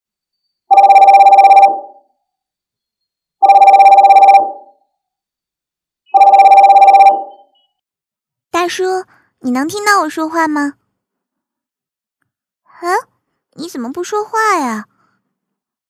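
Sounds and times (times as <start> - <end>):
bright buzzing electronic video call ringing tone: 0.7 - 2.2, 3.4 - 4.9, 6.2 - 7.6
speech: 8.7 - 10.8, 12.8 - 14.9.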